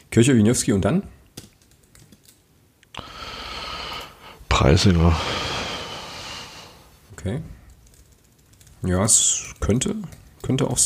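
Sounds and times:
speech: 0:00.2 - 0:01.2, 0:04.6 - 0:05.5, 0:07.2 - 0:07.6, 0:08.8 - 0:10.8
fingers typing on a computer keyboard: 0:01.3 - 0:02.4, 0:07.6 - 0:10.6.

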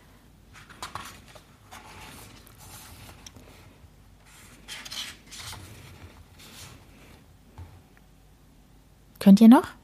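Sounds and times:
book pages being leafed through: 0:00.5 - 0:03.5, 0:04.2 - 0:07.2
speech: 0:09.2 - 0:09.8.

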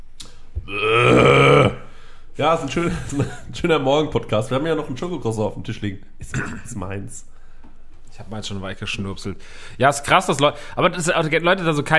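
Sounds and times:
person burping: 0:00.6 - 0:01.9
speech: 0:02.4 - 0:07.3, 0:08.2 - 0:11.9.

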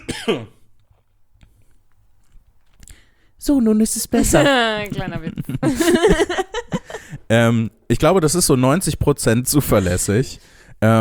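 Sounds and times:
person with a strained, failing voice clearing throat: 0:00.0 - 0:00.6
speech: 0:00.2 - 0:00.6, 0:03.4 - 0:10.9
laughter: 0:04.2 - 0:07.2.

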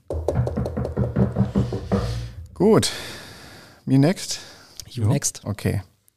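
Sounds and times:
several hands knocking on a wooden table as applause: 0:00.0 - 0:02.4
speech: 0:02.6 - 0:03.1, 0:03.9 - 0:05.9.

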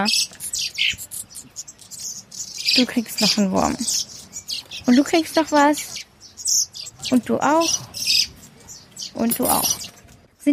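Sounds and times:
speech: 0:00.0 - 0:01.0, 0:02.8 - 0:04.1, 0:04.9 - 0:06.0, 0:07.1 - 0:07.9, 0:09.2 - 0:10.5
small caged birds chirping loudly: 0:00.0 - 0:10.5.

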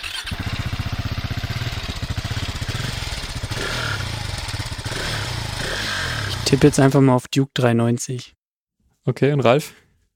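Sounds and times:
modern single-cylinder motorcycle engine idling: 0:00.1 - 0:06.7
speech: 0:06.5 - 0:08.4, 0:09.0 - 0:09.8.

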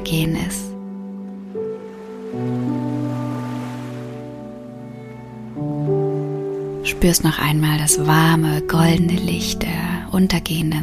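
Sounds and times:
speech: 0:00.0 - 0:00.7, 0:06.9 - 0:10.8
ocean surf washing on a sandy beach at sunset: 0:01.4 - 0:07.6.

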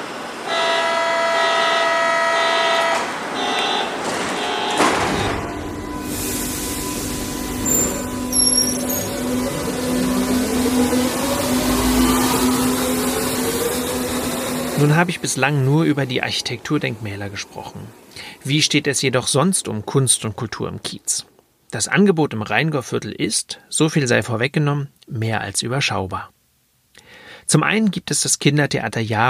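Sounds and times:
subway train departing station rumbling: 0:00.0 - 0:18.8
subway train tonal signal: 0:00.5 - 0:16.0
subway train electric motor whine: 0:05.5 - 0:15.4
speech: 0:14.9 - 0:26.4, 0:27.4 - 0:29.2.

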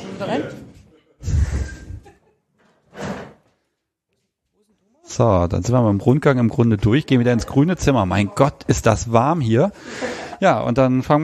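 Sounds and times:
speech: 0:00.2 - 0:00.7, 0:05.2 - 0:11.2
door opening with scraping rumbling bursts: 0:02.6 - 0:03.6.

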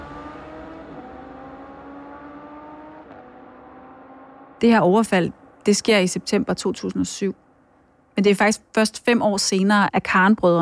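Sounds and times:
sports car engine revving: 0:00.0 - 0:04.6
speech: 0:04.6 - 0:07.4, 0:08.2 - 0:10.6.

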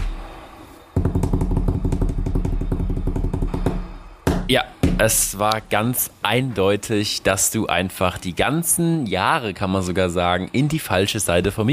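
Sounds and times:
improvised hand-drummed drum roll: 0:01.0 - 0:05.1
speech: 0:04.5 - 0:11.7.

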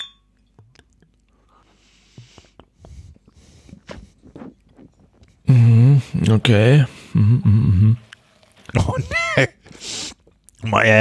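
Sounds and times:
drinking glasses clinking in a toast: 0:00.0 - 0:00.6
speech: 0:05.5 - 0:08.1, 0:08.7 - 0:09.9, 0:10.6 - 0:11.0.

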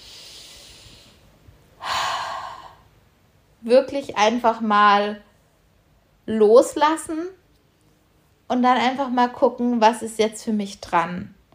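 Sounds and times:
deep breathing in and out during a relaxation exercise: 0:00.0 - 0:03.0
speech: 0:03.6 - 0:05.3, 0:06.3 - 0:07.4, 0:08.5 - 0:11.4.

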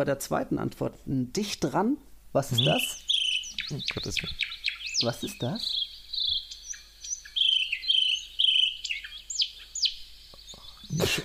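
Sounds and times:
speech: 0:00.0 - 0:03.1, 0:03.7 - 0:05.8
songbirds chirping in an empty football stadium: 0:02.4 - 0:11.2.

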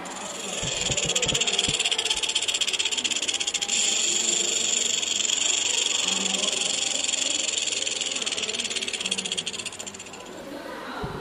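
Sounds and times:
rattlesnake rattling its tail: 0:00.0 - 0:10.7.

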